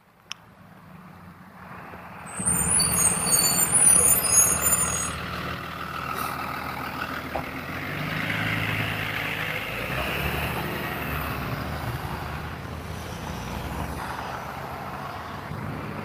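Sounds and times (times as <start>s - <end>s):
school bus diesel engine idling and revving: 0.0s - 16.0s
school bus air brakes hissing: 2.3s - 5.2s.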